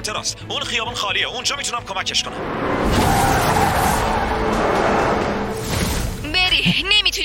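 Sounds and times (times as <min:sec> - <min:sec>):
speech: 0:00.0 - 0:05.3, 0:06.6 - 0:07.2
runaway car engine roaring at high speed: 0:02.0 - 0:05.8
runaway car tires screeching in skids: 0:02.0 - 0:06.2.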